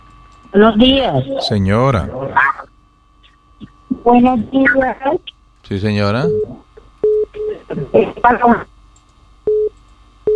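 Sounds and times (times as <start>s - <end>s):
speech: 0.4s - 2.6s, 3.6s - 6.6s, 7.7s - 8.7s
short electronic telephone tones after a dropped phone call: 6.2s - 7.5s, 9.5s - 9.7s.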